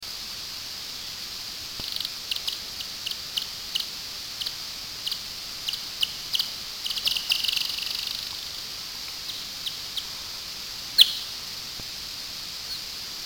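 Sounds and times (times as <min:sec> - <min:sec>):
barbastelle bat courtship calls slowed tenfold: 0:01.8 - 0:08.6, 0:09.2 - 0:10.2, 0:11.0 - 0:11.4.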